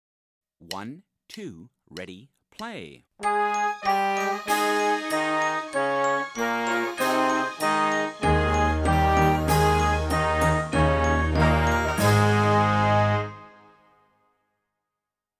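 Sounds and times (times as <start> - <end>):
speech: 0.6 - 5.9
recorded instrumental melody with bright bell-like notes: 3.2 - 12.6.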